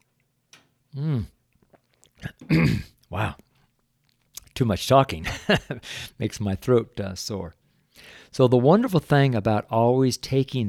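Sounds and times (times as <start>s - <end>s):
person sipping tea: 0.9s - 3.6s
speech: 1.0s - 1.4s, 2.5s - 3.4s, 4.6s - 10.6s
throaty gulp: 1.0s - 3.2s.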